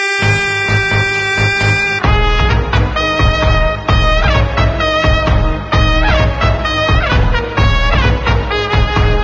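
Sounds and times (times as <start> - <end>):
trumpet: 0.1 - 9.2.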